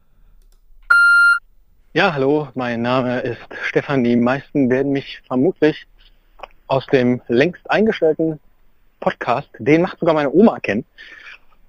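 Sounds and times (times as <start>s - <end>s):
answering machine beep before playing new messages: 0.9s - 1.4s
speech: 2.0s - 5.9s, 6.7s - 8.4s, 9.0s - 11.4s.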